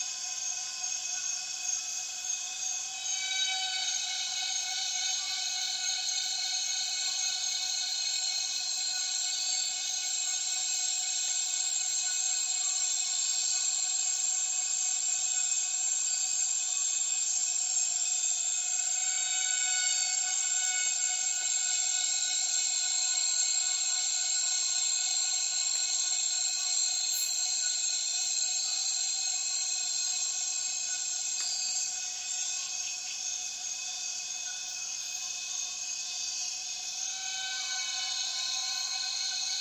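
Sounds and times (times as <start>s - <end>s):
dense chorus of cicadas in the rainforest at dusk: 0.0s - 39.5s.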